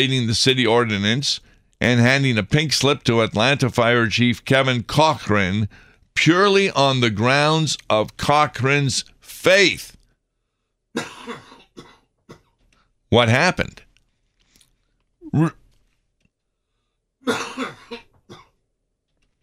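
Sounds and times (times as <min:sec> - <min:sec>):
speech: 0:00.0 - 0:10.0, 0:11.0 - 0:11.5, 0:13.1 - 0:13.8, 0:15.3 - 0:15.6, 0:17.3 - 0:18.0
person coughing: 0:11.0 - 0:12.5, 0:17.2 - 0:18.6.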